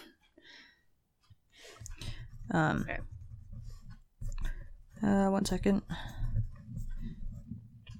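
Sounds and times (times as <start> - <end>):
pen-on-paper strokes of handwriting: 1.7 - 7.9
speech: 2.5 - 3.1, 5.0 - 6.1.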